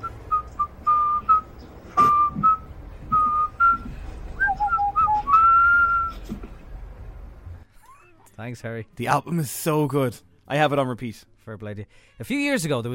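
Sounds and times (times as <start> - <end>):
excited man whistling a lively tune: 0.0 - 6.2
speech: 8.4 - 12.9.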